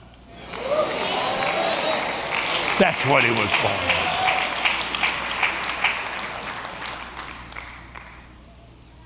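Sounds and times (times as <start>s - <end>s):
congregation shouting and cheering: 0.4s - 6.4s
speech: 2.8s - 4.2s.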